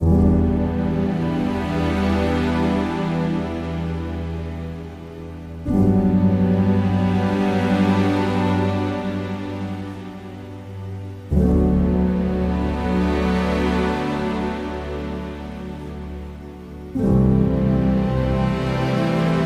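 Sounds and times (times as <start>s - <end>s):
atmospheric piano: 0.0s - 19.4s.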